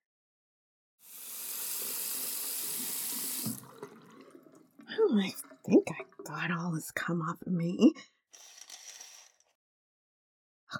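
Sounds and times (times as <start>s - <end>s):
shower water running: 1.0s - 6.7s
faint water drips: 1.4s - 7.1s
speech: 5.0s - 8.5s.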